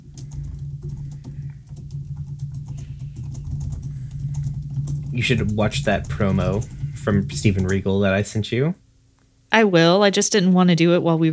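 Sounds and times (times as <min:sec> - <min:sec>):
typing on a computer keyboard: 0:00.0 - 0:08.5
low hum: 0:00.0 - 0:10.0
speech: 0:05.2 - 0:08.8, 0:09.5 - 0:11.3.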